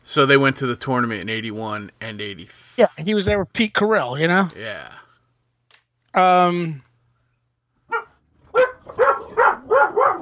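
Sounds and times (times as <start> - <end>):
speech: 0.2 - 5.0, 6.1 - 6.9
dog barking harshly: 7.9 - 10.2.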